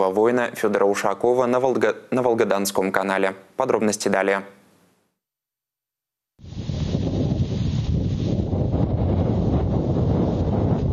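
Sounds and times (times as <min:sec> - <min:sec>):
speech: 0:00.0 - 0:04.6
stormy wind buffeting microphone at a church on the Volga-Don Canal: 0:06.4 - 0:10.9.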